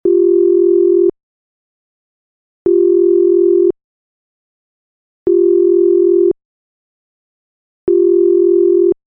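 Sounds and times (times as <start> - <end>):
phone call ringback tone: 0.0 - 1.1, 2.7 - 3.8, 5.3 - 6.4, 7.9 - 9.0.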